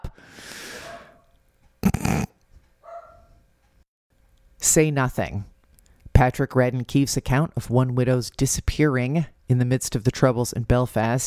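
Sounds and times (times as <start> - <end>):
dog barking: 0.8 - 1.2, 2.8 - 3.4
speech: 4.7 - 5.5, 6.2 - 11.2.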